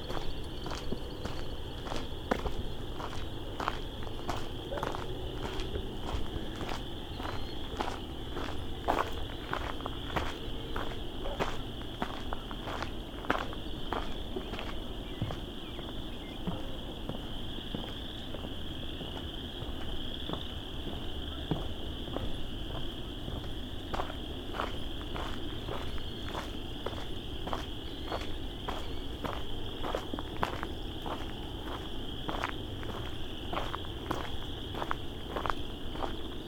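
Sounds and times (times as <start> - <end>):
chorus frogs trilling in a swamp: 0.0 - 36.4
footsteps crunching on a dusk swamp walk: 0.0 - 36.4
low outdoor rumble: 0.0 - 36.4.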